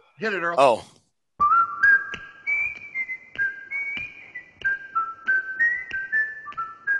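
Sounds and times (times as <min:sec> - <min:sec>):
speech: 0:00.2 - 0:01.0
whistled TV theme tune: 0:01.4 - 0:06.9.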